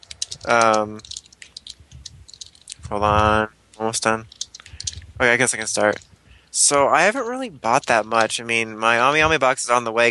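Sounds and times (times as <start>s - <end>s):
typing on a computer keyboard: 0.0s - 2.8s, 4.3s - 5.0s
speech: 0.4s - 1.1s, 2.9s - 4.3s, 5.2s - 10.0s.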